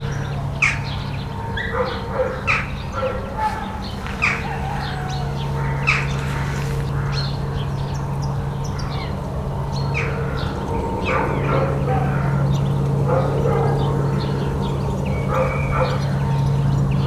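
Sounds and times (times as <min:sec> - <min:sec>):
jackdaw calling in Hortobágy National Park: 0:00.0 - 0:17.0.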